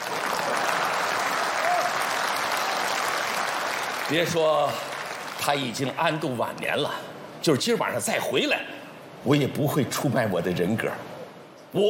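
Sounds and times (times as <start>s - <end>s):
large audience applauding: 0.0s - 5.8s
speech: 4.1s - 11.1s.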